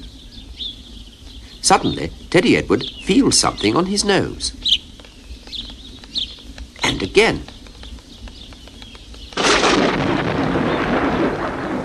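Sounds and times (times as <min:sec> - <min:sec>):
steady rain hiss: 0:00.0 - 0:11.8
speech: 0:01.6 - 0:04.6, 0:07.1 - 0:07.5
thunder crack and rumbling roar: 0:09.2 - 0:11.8.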